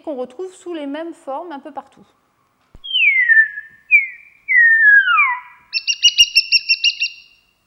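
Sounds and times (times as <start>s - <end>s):
speech: 0.0s - 2.2s
colony animal whistled calls: 2.8s - 7.4s.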